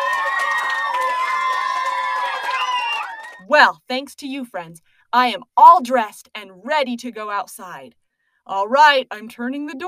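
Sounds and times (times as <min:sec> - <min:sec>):
crowd of young voices cheering and shouting: 0:00.0 - 0:03.4
faint clapping: 0:00.0 - 0:03.4
speech: 0:03.5 - 0:09.8.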